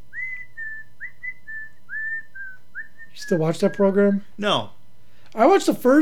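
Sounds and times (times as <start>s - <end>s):
low hum: 0.0s - 6.0s
person whistling an eerie TV horror theme tune: 0.1s - 3.8s
speech: 3.2s - 4.8s, 5.4s - 6.0s.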